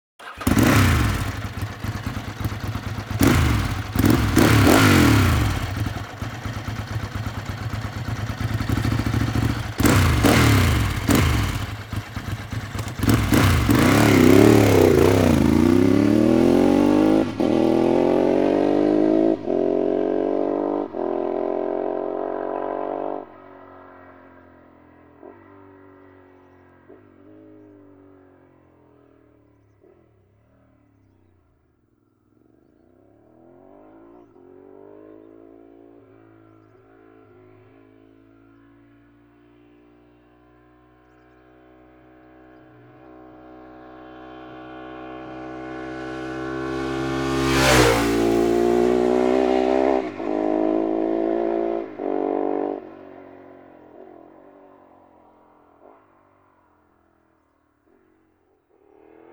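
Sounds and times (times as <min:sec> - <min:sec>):
Ducati 916 SPS motorcycle engine: 0:00.2 - 0:23.6, 0:42.1 - 0:55.6.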